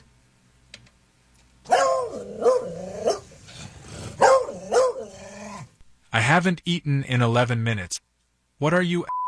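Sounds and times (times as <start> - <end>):
Australian terrier barking with a growly edge: 1.6 - 5.7
speech: 6.3 - 9.2.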